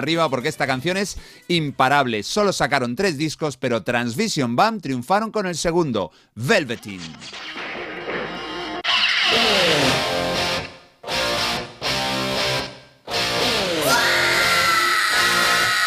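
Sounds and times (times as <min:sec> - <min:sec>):
speech: 0:00.0 - 0:07.7
distorted rock guitars: 0:07.1 - 0:15.8
female vocalist screaming in a rock song: 0:13.6 - 0:15.8.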